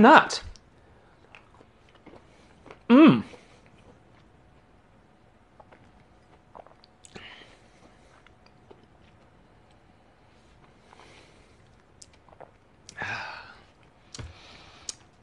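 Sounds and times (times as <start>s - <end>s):
speech: 0.0s - 0.5s, 2.9s - 3.4s
chewing a bite of peanut-heavy chocolate bar: 1.1s - 4.7s, 5.5s - 9.9s, 10.5s - 13.0s.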